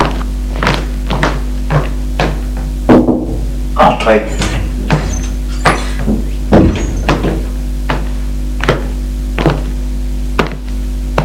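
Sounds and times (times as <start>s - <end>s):
steady low hum: 0.0s - 11.0s
knocking on an office door: 1.1s - 3.5s, 4.4s - 8.8s
speech: 4.0s - 4.6s.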